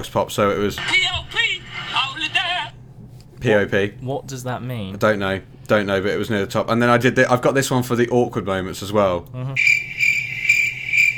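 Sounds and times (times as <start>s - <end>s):
speech: 0.0s - 1.4s, 3.4s - 9.9s
low hum of outdoor ambience: 0.0s - 11.1s
crickets chirping in a forest: 9.6s - 11.1s.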